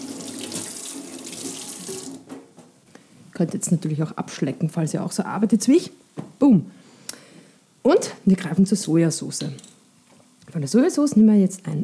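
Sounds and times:
water running from a kitchen tap rinsing a finger: 0.0s - 2.3s
speech: 3.4s - 6.8s, 7.9s - 9.8s, 10.5s - 11.8s.

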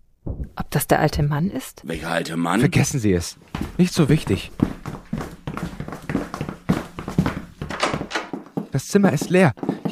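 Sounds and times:
speech: 0.7s - 5.0s, 8.8s - 9.9s
footsteps on a hard floor at walking pace: 3.4s - 9.9s.

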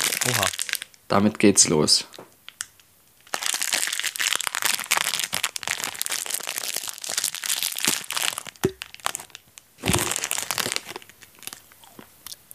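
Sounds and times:
crisp crunching as something is eaten: 0.0s - 0.9s, 3.3s - 12.4s
packet crinkling: 0.0s - 1.0s, 2.5s - 12.5s
speech: 0.2s - 2.3s.

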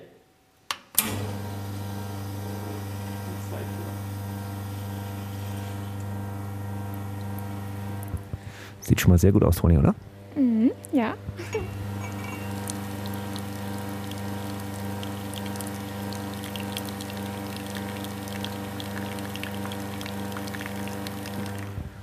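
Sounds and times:
loud continuous mechanical hum: 0.0s - 22.0s
speech: 8.8s - 10.1s
oat milk pouring and splashing: 12.1s - 21.8s.

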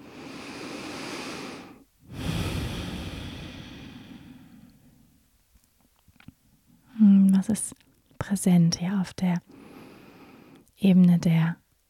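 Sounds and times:
deep slow breathing during a guided heart meditation: 0.0s - 5.2s
speech: 7.4s - 9.6s, 10.8s - 11.6s.

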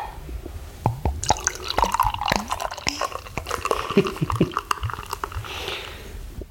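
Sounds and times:
fizzy bubbling of beer: 0.7s - 6.4s
beer pouring into a glass: 1.1s - 6.1s.

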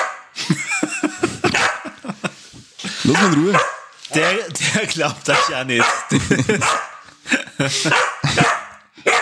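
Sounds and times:
dog barking and yipping: 0.0s - 0.3s, 1.5s - 2.0s, 3.1s - 4.5s, 5.3s - 7.1s, 7.8s - 9.2s
laughter: 0.4s - 3.6s, 4.4s - 8.8s
speech: 3.1s - 6.8s, 7.6s - 8.5s.

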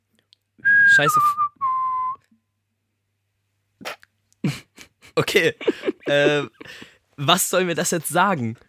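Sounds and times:
person whistling off-key two-note phrase: 0.6s - 2.3s
speech: 1.0s - 1.5s, 5.3s - 8.6s
laughter: 4.4s - 6.9s.

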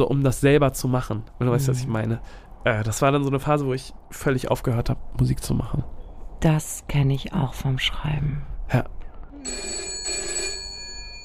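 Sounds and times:
speech: 0.0s - 9.8s
large red telephone ringing: 9.4s - 11.2s.

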